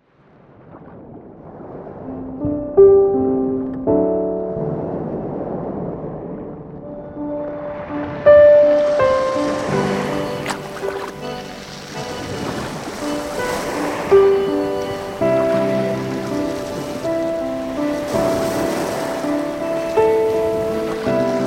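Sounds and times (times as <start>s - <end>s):
Baltic Sea waves: 0.0s - 21.4s
gulls calling: 7.0s - 21.4s.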